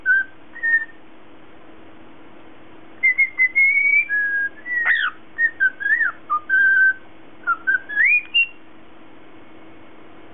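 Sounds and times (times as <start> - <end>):
Lutino cockatiel whistling: 0.0 - 1.0, 3.0 - 8.6.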